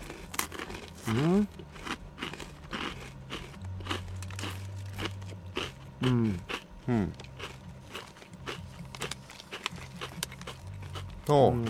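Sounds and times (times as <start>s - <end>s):
crisp bites into a potato croquette: 0.0s - 11.6s
low continuous hum: 0.0s - 11.6s
speech: 1.0s - 1.6s, 6.0s - 7.2s, 11.3s - 11.6s.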